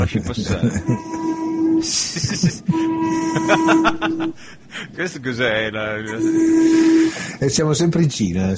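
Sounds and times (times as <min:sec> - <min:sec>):
speech: 0:00.0 - 0:01.2, 0:01.8 - 0:08.5
laughter: 0:00.0 - 0:05.0
tram electric motor whine: 0:00.8 - 0:04.7, 0:05.9 - 0:07.3.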